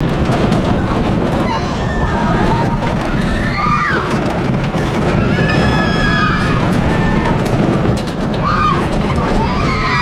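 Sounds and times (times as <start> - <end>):
roller coaster car passing by: 0.0 - 10.0
people screaming on a roller coaster: 1.4 - 7.7, 8.3 - 10.0.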